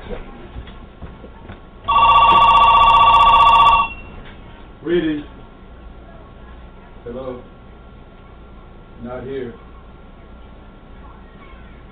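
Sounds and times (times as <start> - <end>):
telephone ringing with a trilling ring: 1.9 - 4.2.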